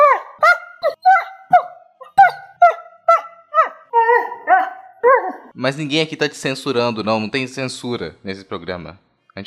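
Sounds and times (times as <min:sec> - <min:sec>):
dog barking: 0:00.0 - 0:05.5
speech: 0:05.6 - 0:09.4.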